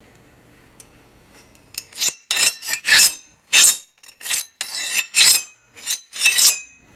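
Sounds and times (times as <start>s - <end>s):
fast metallic knife sharpening scrapes: 1.5s - 6.8s.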